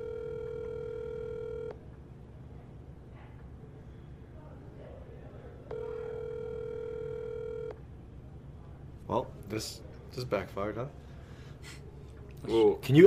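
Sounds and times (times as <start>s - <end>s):
electronic phone call ring tones: 0.0s - 1.8s, 5.7s - 7.8s
speech: 9.1s - 11.0s, 12.4s - 13.0s.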